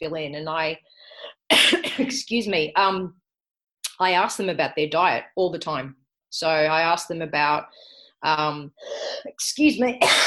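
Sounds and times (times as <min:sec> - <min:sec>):
speech: 0:00.0 - 0:03.2, 0:04.0 - 0:10.2
person in a coughing fit: 0:01.5 - 0:02.2, 0:10.0 - 0:10.2.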